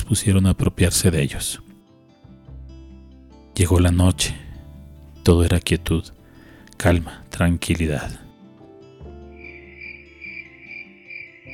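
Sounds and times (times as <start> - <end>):
speech: 0.1 - 1.7, 3.6 - 4.4, 5.2 - 6.2, 6.8 - 8.2
chorus of many crickets chirping: 9.3 - 11.5.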